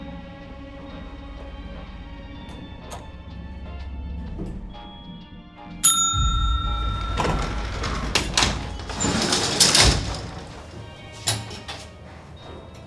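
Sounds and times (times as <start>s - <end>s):
bright elevator chime: 5.8s - 10.6s
elevator doors sliding open: 5.9s - 12.8s.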